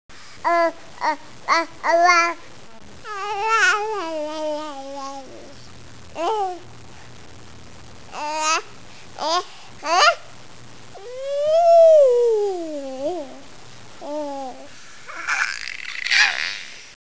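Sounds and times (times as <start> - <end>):
baby: 0.4 - 2.4, 3.0 - 5.6, 6.2 - 6.6, 8.1 - 10.3, 11.0 - 16.9.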